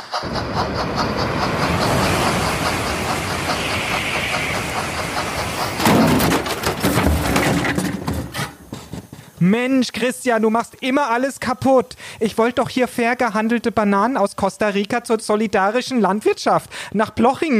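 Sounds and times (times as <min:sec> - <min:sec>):
Transrapid train overtaking on track 3 with rumble and clatter: 0:00.0 - 0:09.3
speech: 0:00.2 - 0:02.0, 0:09.4 - 0:17.5.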